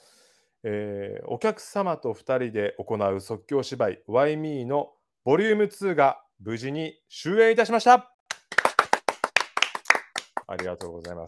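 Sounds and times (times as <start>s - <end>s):
speech: 0.6s - 8.1s, 10.5s - 11.2s
hand clapping: 8.3s - 11.2s.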